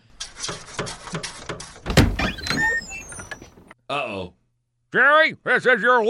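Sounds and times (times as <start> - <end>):
scratching strokes against a door: 0.1 - 3.6
loud thud: 1.9 - 2.4
speech: 3.9 - 6.0.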